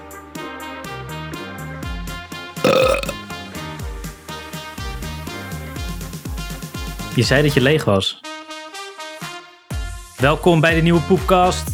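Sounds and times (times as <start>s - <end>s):
loud drawn-out burp: 2.6s - 3.3s
speech: 2.7s - 3.2s, 7.2s - 8.3s, 10.2s - 11.7s.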